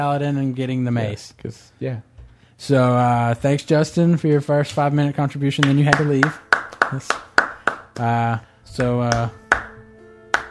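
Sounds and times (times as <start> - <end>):
speech: 0.0 - 7.3, 8.0 - 9.4
hand claps: 5.5 - 10.4.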